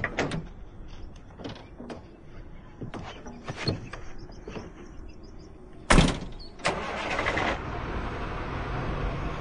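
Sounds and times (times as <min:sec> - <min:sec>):
knocks and clatter: 0:00.0 - 0:04.8
truck engine roaring as the truck pulls away: 0:00.0 - 0:09.3
heavy door slamming: 0:05.9 - 0:06.4.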